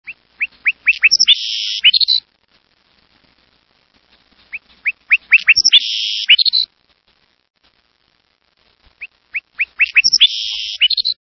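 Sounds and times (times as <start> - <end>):
Savannah sparrow singing: 0.1 - 2.2, 4.5 - 6.7, 9.0 - 11.2.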